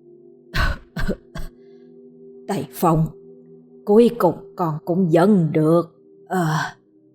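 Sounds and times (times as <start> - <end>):
elderly woman of over ninety coughing: 0.6 - 1.5
speech: 1.1 - 1.3, 2.5 - 3.2, 3.9 - 6.8.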